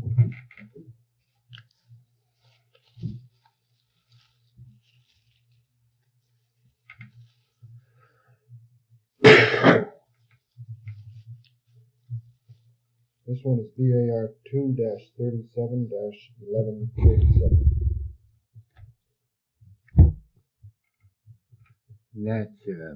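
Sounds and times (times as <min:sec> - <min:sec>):
harsh cough from a person with a cold: 0:09.2 - 0:09.9
speech: 0:13.4 - 0:17.8, 0:22.3 - 0:22.9
faint low thumps: 0:17.0 - 0:18.2, 0:20.0 - 0:20.3.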